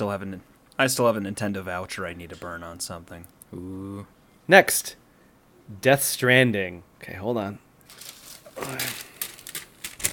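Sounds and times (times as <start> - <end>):
speech: 0.0 - 5.0, 5.7 - 9.1
papers shuffling: 7.8 - 10.1.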